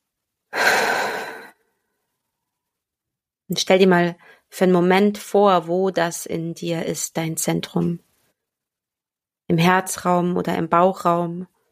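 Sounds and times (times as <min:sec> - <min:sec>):
deep breath in through an open mouth: 0:00.5 - 0:02.0
speech: 0:03.5 - 0:08.1, 0:09.5 - 0:11.5.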